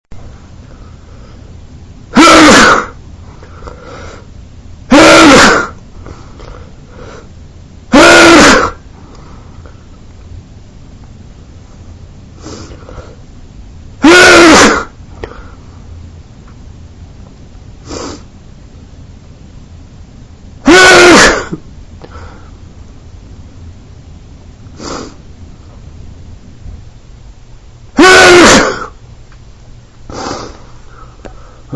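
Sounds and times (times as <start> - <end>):
man sneezing in a harsh fit: 2.2 - 3.0, 4.9 - 5.8, 7.9 - 8.8, 14.0 - 14.9, 20.6 - 21.6, 28.0 - 29.0.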